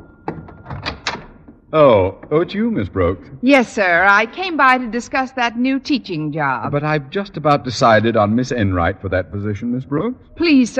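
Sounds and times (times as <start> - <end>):
door opening with latch click: 0.0 - 1.6
wooden knocks and thumps: 0.0 - 2.6
speech: 1.7 - 10.7.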